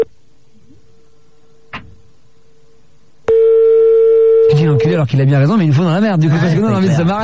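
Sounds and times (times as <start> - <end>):
steady telephone line tone of an unanswered call: 3.3 - 5.0
speech: 4.7 - 7.2.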